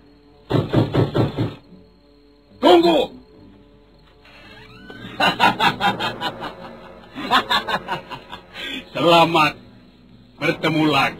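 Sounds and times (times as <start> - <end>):
soldiers knocking loudly on a wooden door: 0.5 - 1.7
laughter: 4.8 - 8.9
speech: 9.1 - 9.6, 10.4 - 11.1.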